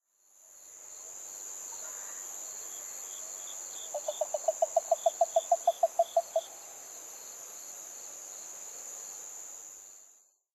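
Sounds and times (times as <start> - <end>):
yaeyama harabuti gaeru frog calling: 3.8 - 6.5.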